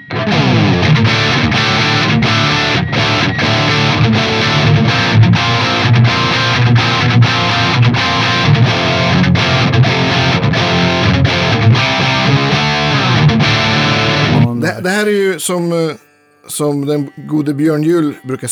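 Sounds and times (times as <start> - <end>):
distorted electric guitar riff with palm-muted chugs through JCM 800 amp: 0.0 - 17.6
speech: 14.8 - 18.5.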